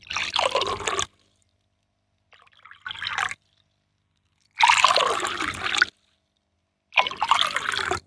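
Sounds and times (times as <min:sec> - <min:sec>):
water poured into four glass tumblers for a solubility experiment: 0:00.1 - 0:01.1, 0:02.4 - 0:03.4, 0:04.6 - 0:05.9, 0:07.0 - 0:08.0.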